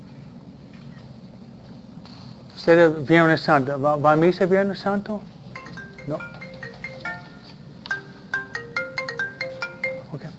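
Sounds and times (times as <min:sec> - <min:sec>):
speech: 0:02.6 - 0:05.4, 0:06.1 - 0:06.3
cell phone ringtone playing during a class: 0:05.6 - 0:10.3.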